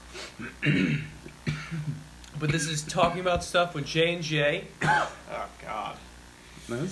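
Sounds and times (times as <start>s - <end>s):
speech: 0.4s - 1.1s, 1.7s - 6.0s, 6.7s - 6.8s
person coughing: 0.4s - 3.2s, 4.8s - 5.3s.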